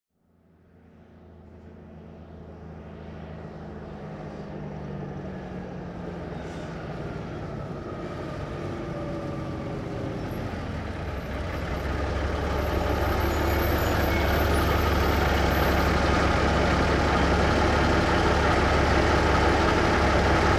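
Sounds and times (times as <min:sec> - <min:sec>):
1954 big rig engine in slow idle, exterior: 0:06.3 - 0:20.5.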